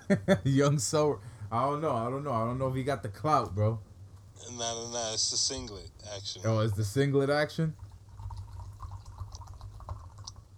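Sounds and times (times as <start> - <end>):
low hum: 0.0 - 10.5
speech: 0.1 - 7.8
ginger ale fizz popping: 7.8 - 10.5
diet ginger ale pouring into a glass: 8.0 - 10.5.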